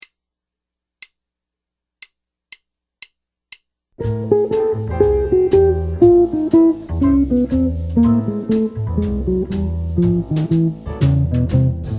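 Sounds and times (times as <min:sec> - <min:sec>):
guitar playing arpeggio enclosures: 0:04.0 - 0:11.9.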